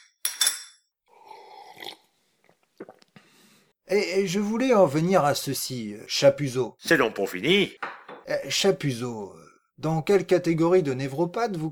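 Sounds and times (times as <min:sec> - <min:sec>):
bock beer glass set down on a ceramic saucer: 0:00.2 - 0:00.8, 0:07.8 - 0:08.3
tableware rattling and knocking: 0:00.2 - 0:00.8, 0:07.8 - 0:08.3
speech: 0:03.9 - 0:11.7.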